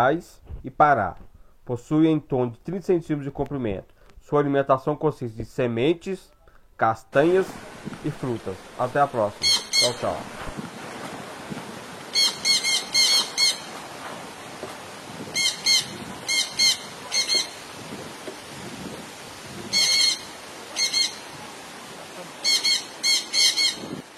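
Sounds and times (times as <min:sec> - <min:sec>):
speech: 0:00.0 - 0:10.7
Jandaya parakeet calling in rasping screeches: 0:12.1 - 0:13.7, 0:15.4 - 0:17.6, 0:19.7 - 0:21.2, 0:22.4 - 0:23.8.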